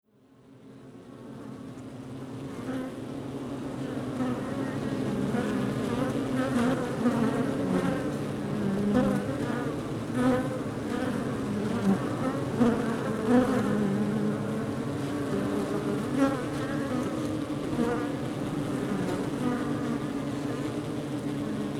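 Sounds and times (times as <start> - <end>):
outdoor beehive: 0.2 - 21.7.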